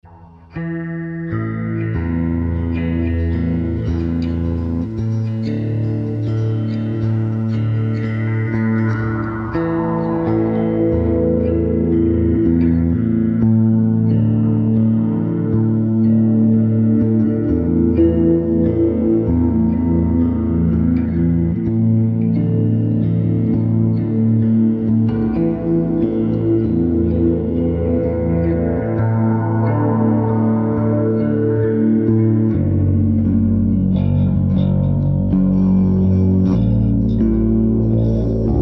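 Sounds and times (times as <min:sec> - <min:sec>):
eight string ambience: 0:00.0 - 0:38.5.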